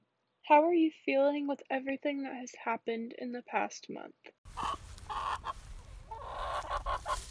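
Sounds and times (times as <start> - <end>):
speech: 0.5 - 4.8
chicken clucking: 4.5 - 7.2.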